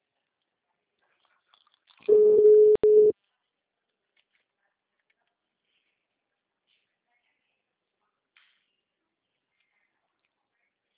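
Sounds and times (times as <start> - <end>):
telephone ringing tone of an unanswered call: 2.1 - 3.1.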